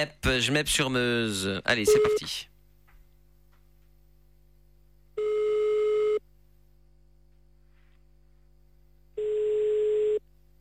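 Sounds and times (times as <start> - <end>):
speech: 0.0 - 2.5
outgoing telephone call ringing tone: 5.2 - 6.2, 9.2 - 10.2.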